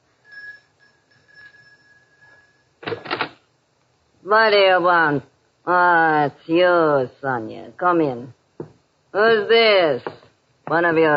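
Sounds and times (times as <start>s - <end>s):
electric doorbell ringing: 0.2s - 2.8s
speech: 4.2s - 8.4s, 9.2s - 11.1s.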